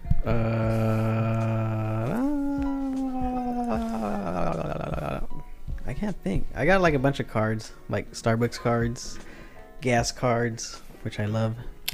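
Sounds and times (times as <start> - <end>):
speech: 0.2 - 0.6, 6.1 - 11.9
dog howling and whimpering: 1.1 - 5.2.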